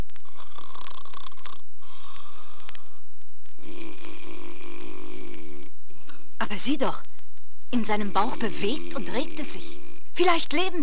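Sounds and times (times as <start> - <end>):
loud rasping snoring of a sleeping wolf: 0.2 - 2.8, 3.6 - 5.8, 7.8 - 10.1
speech: 6.5 - 7.1, 7.7 - 10.8.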